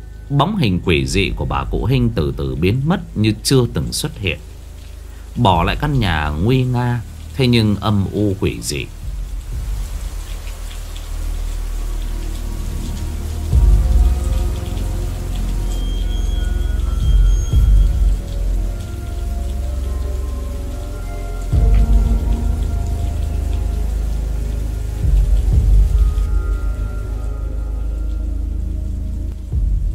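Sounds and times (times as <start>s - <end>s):
heavy rain pouring down over a village: 0.0s - 29.9s
speech: 0.3s - 4.5s, 5.4s - 9.0s.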